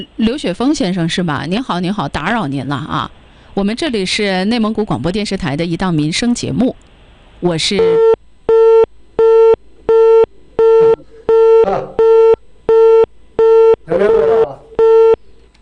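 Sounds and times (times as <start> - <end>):
speech: 0.0 - 8.2
telephone busy signal after call hung up: 7.8 - 15.2.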